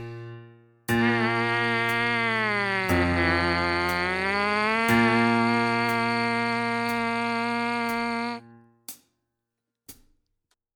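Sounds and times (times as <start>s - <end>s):
trumpet buzz exercise: 0.9s - 8.4s.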